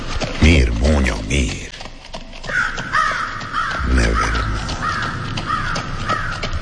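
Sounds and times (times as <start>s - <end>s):
speech: 1.0s - 1.7s
raven cawing: 2.4s - 6.6s.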